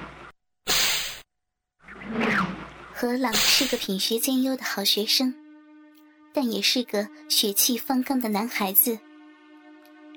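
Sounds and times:
whip swishing through the air: 0:00.7 - 0:01.2
speech: 0:03.0 - 0:05.4, 0:06.3 - 0:09.1.

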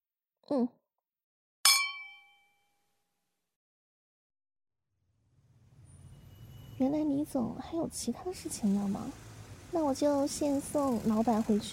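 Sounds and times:
speech: 0:00.5 - 0:00.8, 0:06.8 - 0:11.7
glasses clinking in a toast: 0:01.7 - 0:02.4.

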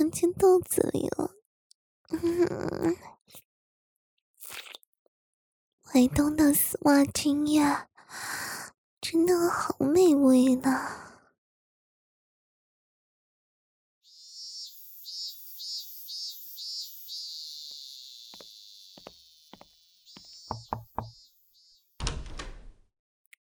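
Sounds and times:
speech: 0:00.1 - 0:01.3, 0:05.9 - 0:11.1
door creaking open with a high-pitched squeal: 0:20.5 - 0:21.2, 0:22.0 - 0:22.9.

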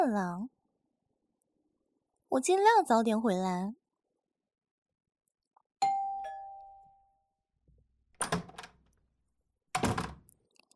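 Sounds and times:
speech: 0:00.0 - 0:00.6, 0:02.3 - 0:03.8
doorbell chime: 0:05.8 - 0:07.3
door unlatched and pulled open with heavy clunks: 0:08.2 - 0:08.8, 0:09.8 - 0:10.3.

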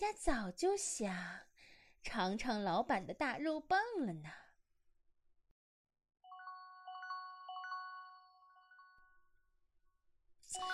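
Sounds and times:
speech: 0:00.0 - 0:04.4, 0:10.5 - 0:10.7
phone ringing with a short melodic electronic ringtone: 0:06.3 - 0:09.3, 0:10.6 - 0:10.7.

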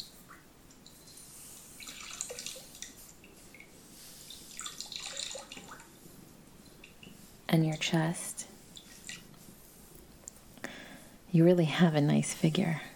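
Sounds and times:
water splashing as arms are washed in a bath: 0:01.7 - 0:06.0, 0:08.6 - 0:09.4
speech: 0:07.6 - 0:08.3, 0:11.4 - 0:12.9.

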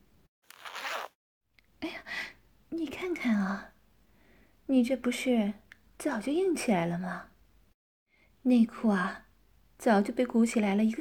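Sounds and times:
clothing zipper being unzipped: 0:00.5 - 0:01.2
speech: 0:02.7 - 0:03.7, 0:04.7 - 0:07.3, 0:08.4 - 0:09.2, 0:09.8 - 0:10.9.

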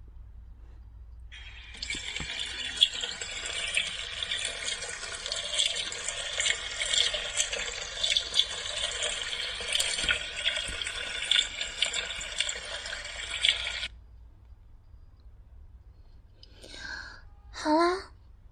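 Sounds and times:
tap gushing water into a bath: 0:01.3 - 0:13.9.

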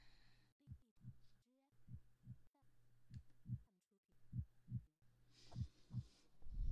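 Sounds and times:
steady heartbeat being checked, soft low thumps: 0:00.6 - 0:01.2, 0:01.8 - 0:02.5, 0:03.1 - 0:03.7, 0:04.3 - 0:06.7.

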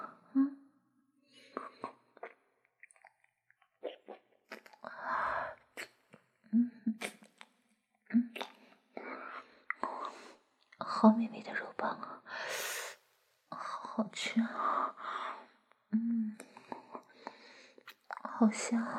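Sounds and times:
soft whispery breaths: 0:04.8 - 0:05.8, 0:08.6 - 0:18.9
wet mouth sounds of someone sucking a lollipop: 0:05.6 - 0:06.2, 0:06.9 - 0:07.5
speech: 0:11.0 - 0:12.6, 0:14.2 - 0:14.8, 0:18.4 - 0:18.9.

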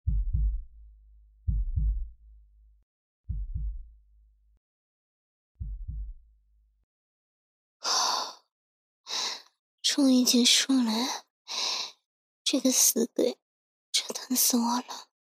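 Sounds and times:
slow heartbeat: 0:00.0 - 0:00.6, 0:01.5 - 0:02.1, 0:03.3 - 0:03.8, 0:05.6 - 0:06.2
speech: 0:10.0 - 0:11.7, 0:12.5 - 0:13.4, 0:14.3 - 0:15.1.

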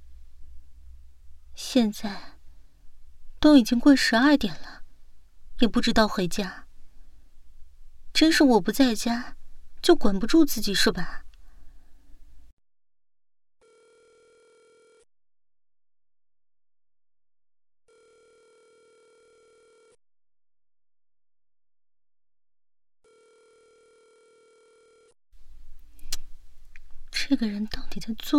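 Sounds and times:
speech: 0:01.7 - 0:02.3, 0:03.4 - 0:04.8, 0:05.6 - 0:06.6, 0:08.2 - 0:11.2, 0:27.4 - 0:28.3
phone ringback tone: 0:13.6 - 0:15.1, 0:17.9 - 0:20.0, 0:23.1 - 0:25.1.

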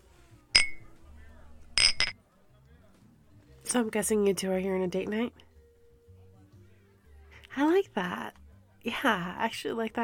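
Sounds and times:
faint murmur: 0:00.0 - 0:10.0
glasses clinking in a toast: 0:00.6 - 0:00.8, 0:01.8 - 0:02.2
speech: 0:03.7 - 0:05.4, 0:07.6 - 0:10.0.

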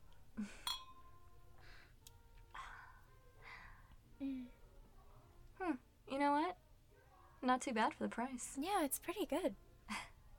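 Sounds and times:
speech: 0:00.4 - 0:00.6, 0:07.5 - 0:09.6
glasses clinking in a toast at a sushi dinner: 0:00.6 - 0:01.2
people chatting: 0:07.4 - 0:10.0.

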